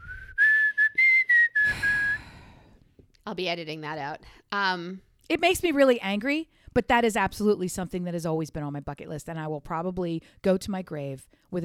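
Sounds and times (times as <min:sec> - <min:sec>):
person whistling through lips in short breathy notes: 0:00.0 - 0:02.8
speech: 0:03.2 - 0:11.6.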